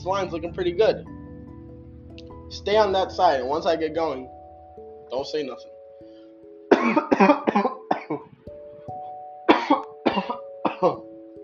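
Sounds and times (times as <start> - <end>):
speech: 0.0 - 1.2, 2.5 - 4.4, 5.1 - 5.7, 6.8 - 8.3
person coughing from an itchy throat: 6.7 - 8.3, 9.5 - 11.1
throat clearing from an itchy throat: 6.7 - 8.3, 9.5 - 11.1.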